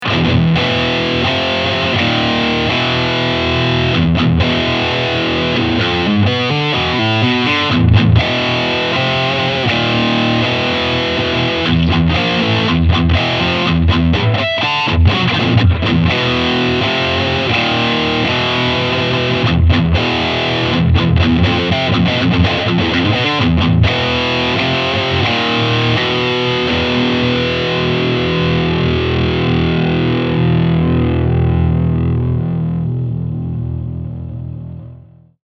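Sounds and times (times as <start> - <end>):
Blackstar HT 20R MkII modern overdrive guitar amplifier: 0.0 - 35.4.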